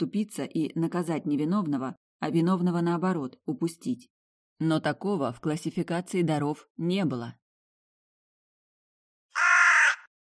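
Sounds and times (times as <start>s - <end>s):
speech: 0.0s - 7.4s
raven cawing: 9.3s - 10.1s.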